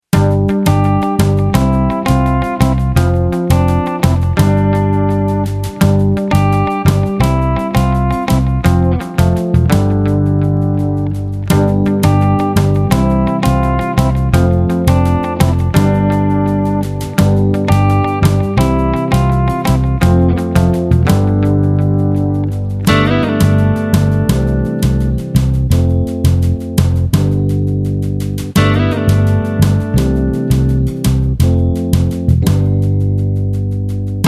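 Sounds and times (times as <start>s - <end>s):
guitars: 0.0s - 34.2s.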